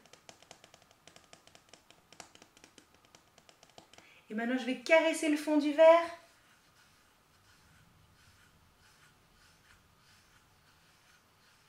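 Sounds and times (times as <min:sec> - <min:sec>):
fingernails tapping softly on a hard surface: 0:00.0 - 0:04.0
speech: 0:04.3 - 0:06.2.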